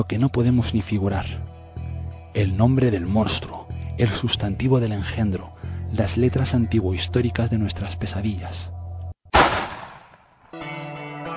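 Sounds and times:
speech: 0:00.0 - 0:01.5, 0:02.3 - 0:08.8
gunshot sound effect from a radio drama: 0:09.3 - 0:10.3.

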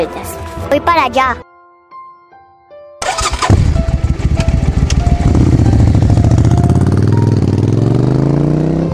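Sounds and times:
speech: 0:00.0 - 0:01.5
motorcycle engine starting and riding off: 0:03.0 - 0:08.9.

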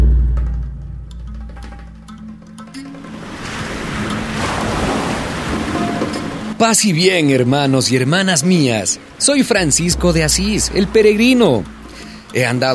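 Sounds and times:
ocean waves rolling in with surf: 0:01.3 - 0:12.7
speech: 0:06.6 - 0:12.7.

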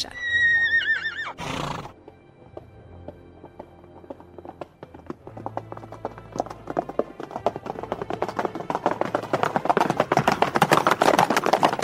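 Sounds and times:
horse neighing: 0:00.0 - 0:02.0
galloping horse hooves clip-clopping: 0:01.1 - 0:11.8.

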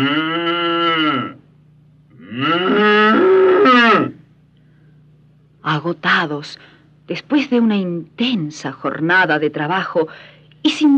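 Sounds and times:
bull bellowing: 0:00.0 - 0:01.4, 0:02.1 - 0:04.2
speech: 0:05.8 - 0:10.9.

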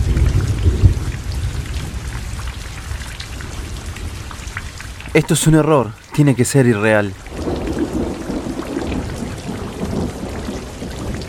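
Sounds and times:
deep thunder rumbling: 0:00.0 - 0:04.8, 0:07.2 - 0:11.2
steady heavy rain pouring down: 0:00.0 - 0:11.2
speech: 0:05.2 - 0:07.3.

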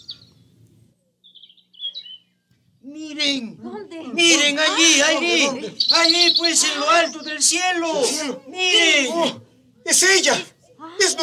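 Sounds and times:
bird chirping: 0:00.0 - 0:02.8, 0:04.8 - 0:08.4
speech: 0:02.9 - 0:10.5.

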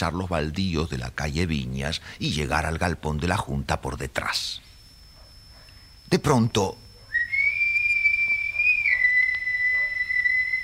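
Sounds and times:
speech: 0:00.0 - 0:04.7, 0:06.1 - 0:06.8
distant whistle holding one high note: 0:07.0 - 0:10.6.

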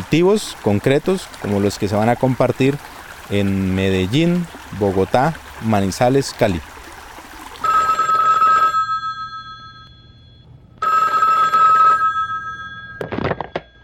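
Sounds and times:
speech: 0:00.1 - 0:06.7
telephone ringing with an incoming call: 0:07.6 - 0:13.8.

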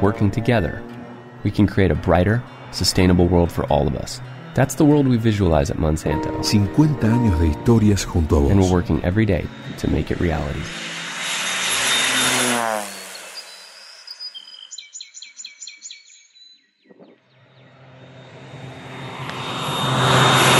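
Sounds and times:
speech: 0:00.0 - 0:10.9
light crop-spraying propeller aircraft droning overhead: 0:00.0 - 0:14.4, 0:17.3 - 0:20.5
bird chirps: 0:13.0 - 0:17.8.

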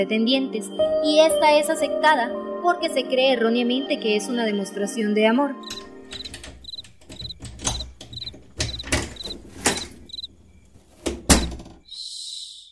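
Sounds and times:
speech: 0:00.0 - 0:05.9
wooden door being handled and shut: 0:05.6 - 0:11.8
crickets chirping: 0:05.6 - 0:12.7.

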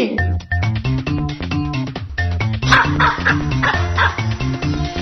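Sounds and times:
steady rhythmic music backing: 0:00.1 - 0:04.9
dog barking: 0:02.7 - 0:04.2.

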